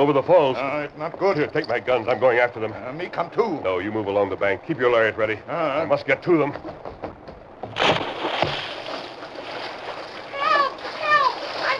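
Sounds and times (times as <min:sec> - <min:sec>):
speech: 0:00.0 - 0:06.9
water churning and sloshing as a man wades through a strong current: 0:00.0 - 0:11.7
man entering a stream with a loud splash: 0:07.8 - 0:11.7.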